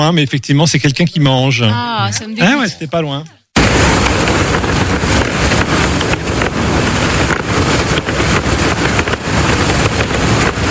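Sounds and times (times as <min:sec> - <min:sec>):
speech: 0:00.0 - 0:03.4
strong wind rushing and buffeting against a boat's sails: 0:03.6 - 0:10.6.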